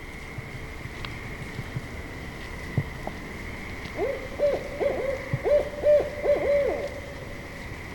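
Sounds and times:
faint steady hum: 0.0 - 7.9
barred owl hooting: 4.0 - 7.5.

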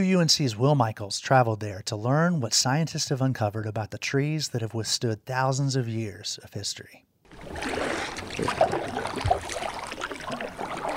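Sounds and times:
speech: 0.0 - 9.4
faint knocks or splashes: 7.3 - 10.9
steady soft wash of water around a small boat on a calm river: 7.3 - 10.9.

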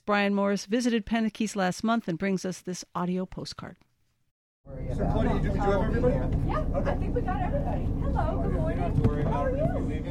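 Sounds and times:
speech: 0.1 - 3.9, 4.7 - 10.0
boat engine droning while cruising across open water: 4.7 - 10.0.

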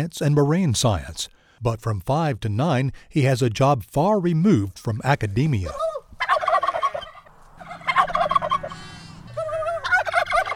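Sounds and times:
speech: 0.0 - 5.9
heritage turkeys gobbling loudly: 5.6 - 10.5.

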